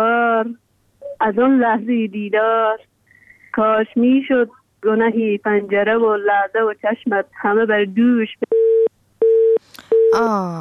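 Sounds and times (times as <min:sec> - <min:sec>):
speech: 0:01.2 - 0:02.9, 0:03.6 - 0:08.4, 0:10.1 - 0:10.6
telephone busy tone after a call is cut off: 0:08.5 - 0:10.2.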